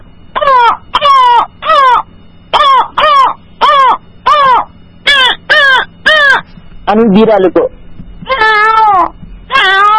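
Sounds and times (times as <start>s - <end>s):
crow cawing: 0.4s - 6.5s, 8.3s - 9.9s
speech: 6.9s - 7.7s.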